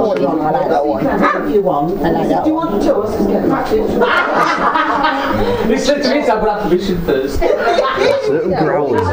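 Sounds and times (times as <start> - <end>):
speech: 0.2 - 9.1
puppy yapping and barking: 1.2 - 1.6
laughter: 3.4 - 9.1.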